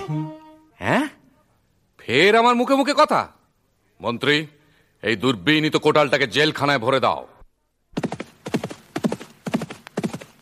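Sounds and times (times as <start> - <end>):
speech: 0.1 - 1.0, 2.1 - 3.4, 4.0 - 7.4
horse galloping: 8.0 - 10.3.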